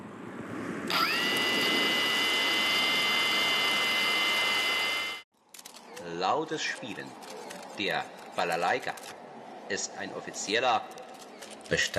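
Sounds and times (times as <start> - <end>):
military work drone motors whining: 0.9 - 5.3
speech: 6.2 - 11.0, 11.7 - 11.9.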